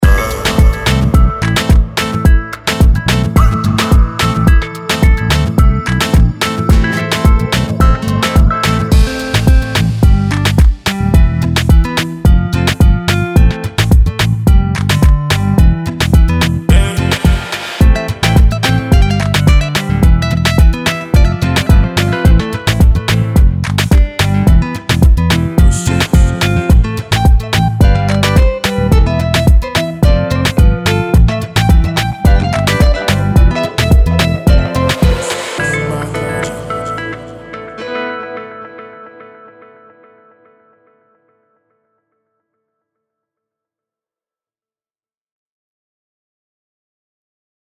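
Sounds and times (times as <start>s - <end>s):
latin vibes trailer soundtrack: 0.0s - 39.3s.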